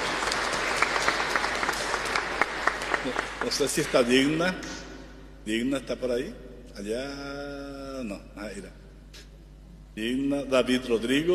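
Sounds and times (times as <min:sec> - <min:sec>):
audience applauding birthday greetings: 0:00.0 - 0:04.4
speech: 0:03.0 - 0:04.8, 0:05.4 - 0:08.8, 0:10.0 - 0:11.3.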